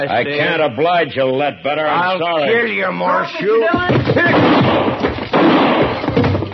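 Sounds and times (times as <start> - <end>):
speech: 0.0 - 5.1
loud heavy gunshot in a Western radio drama: 4.2 - 6.4.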